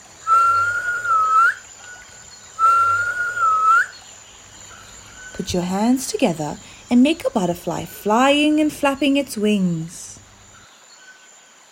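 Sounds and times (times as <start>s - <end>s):
person whistling imitating birds: 0.2s - 2.0s, 2.6s - 4.0s
speech: 5.4s - 10.0s.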